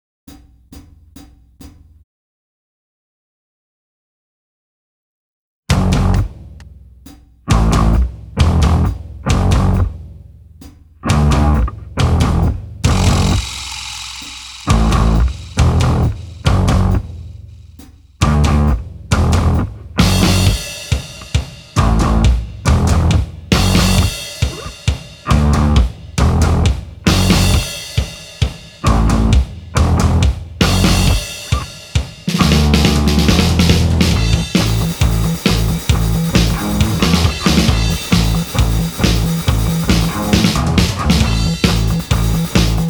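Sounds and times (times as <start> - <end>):
guitar backing track without vocals: 7.5 - 9.9, 11.0 - 13.5, 14.7 - 17.0, 18.2 - 27.7, 28.8 - 42.8.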